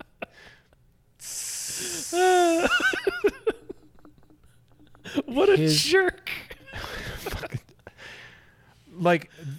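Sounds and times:
voice imitating sizzling fizzing soda: 1.2 - 2.8
speech: 2.1 - 3.3, 5.3 - 6.4, 9.0 - 9.5.

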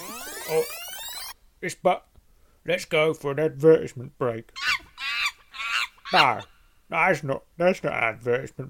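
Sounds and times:
speech: 0.5 - 0.8, 1.6 - 4.6, 6.1 - 8.6
monkey shrill honking calls sound effect: 4.6 - 6.6.

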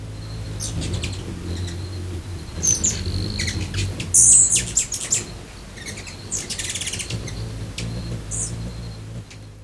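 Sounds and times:
hummingbirds chirping and twittering at a backyard feeder: 0.0 - 9.6.

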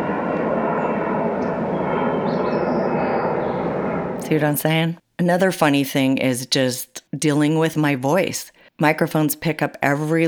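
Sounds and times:
airplane flying overhead: 0.0 - 4.3
speech: 4.3 - 10.2.

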